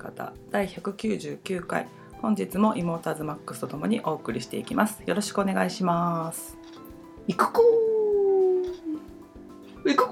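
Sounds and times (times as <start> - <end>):
speech: 0.0 - 7.8, 9.8 - 10.0
person imitating a wolf howl: 7.5 - 9.0.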